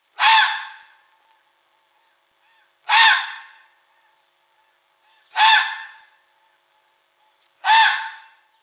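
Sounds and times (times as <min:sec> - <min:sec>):
male red fox Vulpes vulpes barking: 0:00.2 - 0:00.9, 0:02.9 - 0:03.5, 0:07.6 - 0:08.3.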